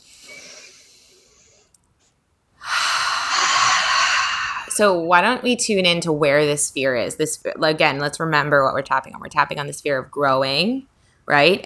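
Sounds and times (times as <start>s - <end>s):
deep breath taken during a tapping exercise: 0.0s - 1.7s, 2.6s - 4.7s
speech: 4.8s - 11.6s.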